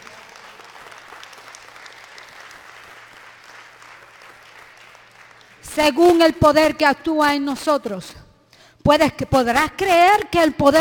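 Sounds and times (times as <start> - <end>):
church congregation applauding during a sermon: 0.0 - 6.4
speech: 5.8 - 8.2, 8.8 - 10.8.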